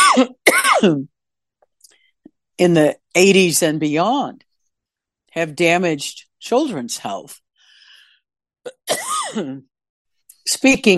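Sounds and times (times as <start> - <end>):
person clearing throat with a raspy voiced rasp: 0.0 - 1.0
person coughing: 0.0 - 1.1, 8.7 - 9.6
speech: 0.2 - 1.1, 2.6 - 4.5, 5.3 - 7.4, 8.6 - 9.7, 10.4 - 10.9.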